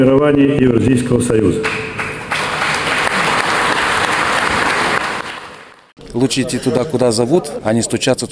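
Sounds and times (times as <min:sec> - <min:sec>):
speech: 0:00.0 - 0:02.0, 0:06.1 - 0:08.2
congress delegates applauding: 0:01.6 - 0:06.0.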